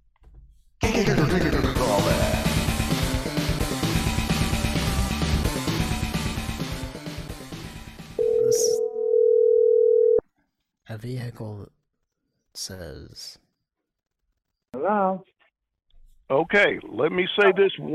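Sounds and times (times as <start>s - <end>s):
loud music: 0.8s - 8.2s
telephone dial tone: 8.2s - 10.2s
speech: 11.0s - 11.8s, 12.6s - 13.4s, 14.8s - 15.3s, 16.3s - 17.9s.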